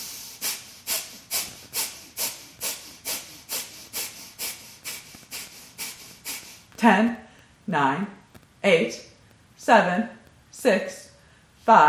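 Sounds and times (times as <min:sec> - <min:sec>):
bellows breathing sharp exhales through the nostrils during yoga practice: 0:00.0 - 0:06.7
speech: 0:06.8 - 0:11.0, 0:11.7 - 0:11.8.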